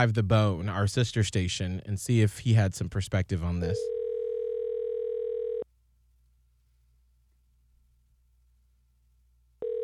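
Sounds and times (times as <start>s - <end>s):
speech: 0.0s - 4.0s
unanswered telephone ringback tone: 3.8s - 5.6s, 9.6s - 9.8s.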